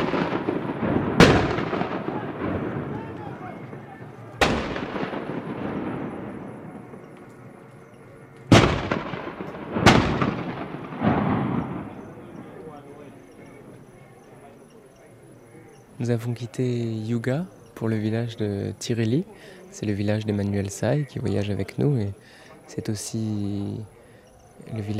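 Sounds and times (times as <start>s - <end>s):
gunshot volleys at night in a village: 0.0s - 7.1s, 8.5s - 12.2s
speech: 16.0s - 24.0s, 24.6s - 24.9s.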